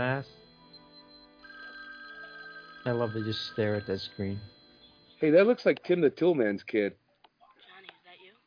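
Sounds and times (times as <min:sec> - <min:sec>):
speech: 0:00.0 - 0:00.4, 0:02.8 - 0:04.6, 0:05.2 - 0:07.0
telephone ringing with a steady electronic tone: 0:00.0 - 0:06.4.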